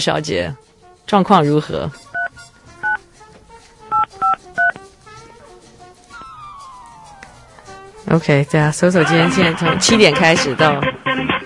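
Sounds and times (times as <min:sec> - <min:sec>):
speech: 0:00.0 - 0:02.0, 0:08.1 - 0:11.4
touch-tone beeps from a phone keypad: 0:02.2 - 0:03.0, 0:03.9 - 0:04.8.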